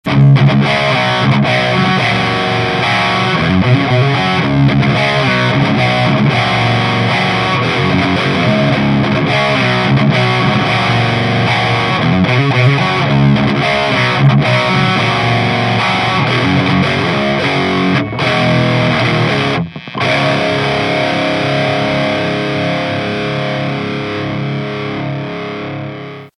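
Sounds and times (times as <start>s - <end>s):
modded guitar amp lead channel: 0.0s - 26.3s.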